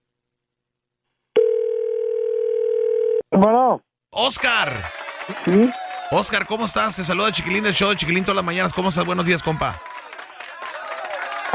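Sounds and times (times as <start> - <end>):
steady electronic phone ringing tone on an outgoing call: 1.4 - 3.2
speech: 3.3 - 9.9.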